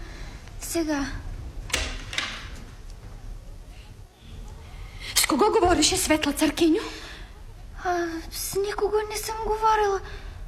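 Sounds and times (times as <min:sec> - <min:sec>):
speech: 0:00.7 - 0:01.3, 0:05.3 - 0:07.0, 0:07.8 - 0:10.2
door being opened with sharp clacks: 0:01.7 - 0:02.7.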